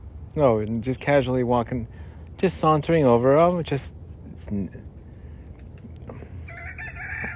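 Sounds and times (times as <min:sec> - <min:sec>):
outdoor noise: 0:00.0 - 0:07.3
speech: 0:00.4 - 0:04.9
voices murmuring: 0:00.4 - 0:07.1
rooster calling: 0:06.1 - 0:07.3.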